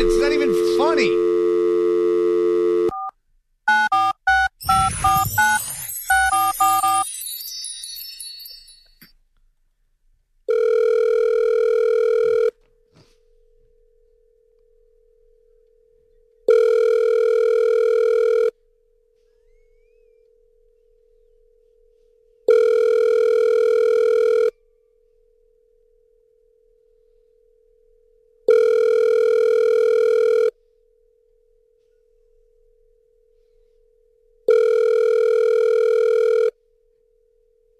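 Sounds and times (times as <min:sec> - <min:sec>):
telephone line ringing out through a handset earpiece: 0:00.0 - 0:03.1, 0:03.7 - 0:07.1, 0:10.5 - 0:12.5, 0:16.5 - 0:18.6, 0:22.5 - 0:24.5, 0:28.5 - 0:30.6, 0:34.5 - 0:36.6
speech: 0:00.9 - 0:01.2.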